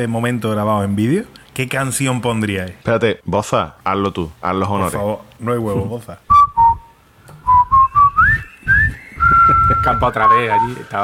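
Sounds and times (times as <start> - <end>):
speech: 0.0 - 6.3, 9.8 - 11.0
person whistling a march tune: 6.3 - 10.9.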